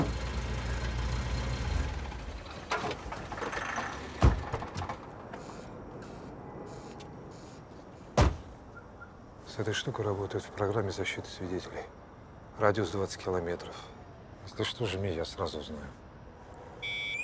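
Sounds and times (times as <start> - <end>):
car pulling up to a house, low engine rumble: 0.0 - 7.1
speech: 9.6 - 12.0, 12.6 - 16.0.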